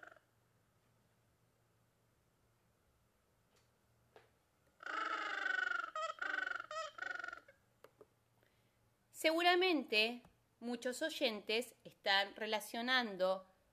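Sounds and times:
Gentoo Penguin harsh pulsing braying call: 0:04.8 - 0:07.5
speech: 0:09.2 - 0:13.5.

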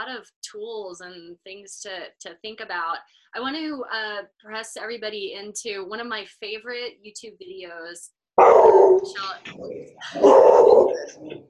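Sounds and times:
speech: 0:00.1 - 0:11.4
dog barking and howling with a yipping quality: 0:08.4 - 0:11.4.

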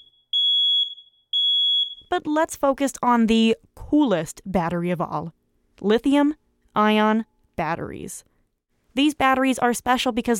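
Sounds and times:
smoke alarm high-pitched beeping: 0:00.0 - 0:02.1
speech: 0:02.1 - 0:08.3, 0:09.0 - 0:10.3.

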